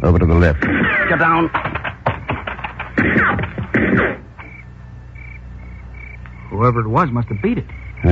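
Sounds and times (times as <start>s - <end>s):
speech: 0.0s - 1.8s, 3.0s - 4.2s, 6.6s - 8.1s
sharp gunshots with ringing echo: 0.4s - 4.4s.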